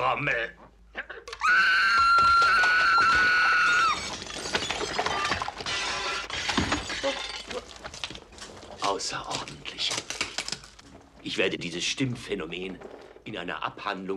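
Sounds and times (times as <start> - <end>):
speech: 0.0 - 0.8, 9.0 - 10.0, 11.2 - 14.1
sustained high-pitched scream: 1.4 - 4.1
glass shattering: 2.6 - 8.5.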